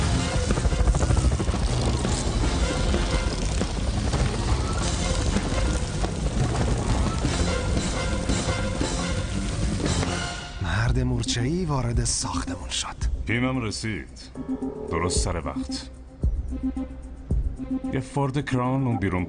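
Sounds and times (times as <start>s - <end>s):
aircraft engine roaring during takeoff: 0.0s - 10.5s
speech: 11.2s - 17.0s, 17.8s - 19.2s.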